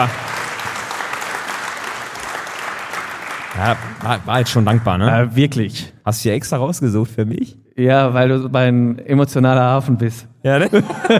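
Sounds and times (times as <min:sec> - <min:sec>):
speech: 0:00.0 - 0:00.2, 0:03.6 - 0:11.1
steady applause from a small group: 0:00.0 - 0:05.3
laughter: 0:10.5 - 0:11.1.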